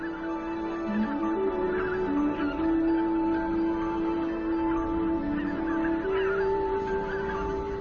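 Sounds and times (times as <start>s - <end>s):
large flock of geese honking: 0.0s - 7.7s.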